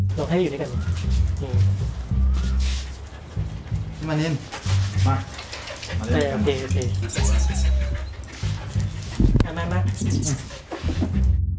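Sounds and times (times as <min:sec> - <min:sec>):
speech: 0:00.2 - 0:01.9, 0:04.0 - 0:08.0, 0:09.5 - 0:11.4
dogs panting in a cage: 0:00.2 - 0:11.3
dog whimpering: 0:02.1 - 0:11.2.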